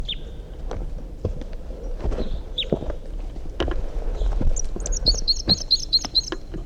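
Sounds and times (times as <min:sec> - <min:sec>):
wild bird chirping: 0:00.0 - 0:00.4, 0:04.2 - 0:06.6
soft low thumps: 0:00.6 - 0:06.4.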